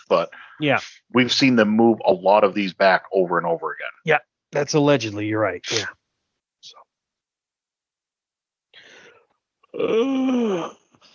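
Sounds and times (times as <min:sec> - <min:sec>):
speech: 0:00.1 - 0:06.0, 0:09.7 - 0:10.8
short breathy inhale: 0:08.7 - 0:09.3
person yawning with a moaning sliding pitch: 0:09.6 - 0:11.1.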